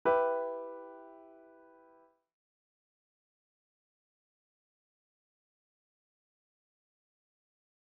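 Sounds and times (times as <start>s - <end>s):
E minor chord progression: 0.0s - 2.1s.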